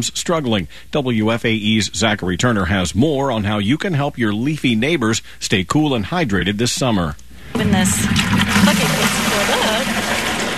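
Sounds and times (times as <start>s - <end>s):
speech: 0.0s - 9.8s
water gushing into a bucket: 7.4s - 10.5s.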